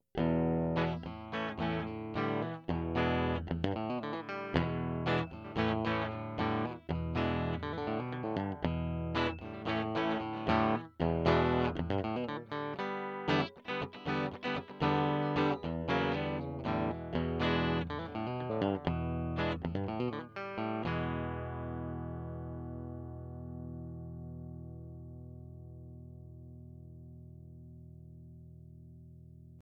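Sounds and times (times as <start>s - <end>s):
clean electric guitar on bridge pickup: 0.0s - 29.6s.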